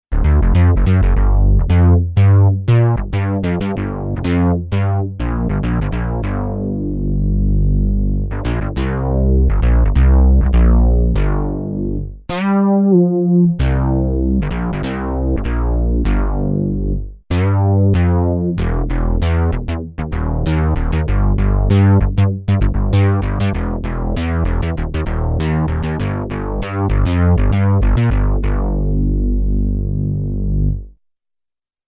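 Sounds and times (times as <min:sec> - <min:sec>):
Korg DW-8000 synth bass: 0:00.1 - 0:31.0.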